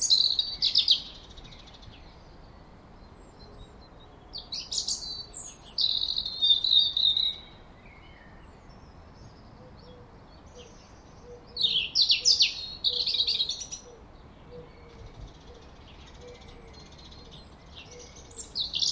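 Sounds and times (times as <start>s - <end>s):
European robin Erithacus rubecula song: 0.0s - 18.9s.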